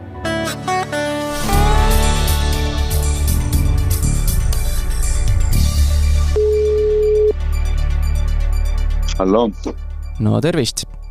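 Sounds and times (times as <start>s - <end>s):
loud busy music bed: 0.0s - 11.0s
steady ringback tone of an outgoing phone call: 6.3s - 7.4s
speech: 9.2s - 11.0s.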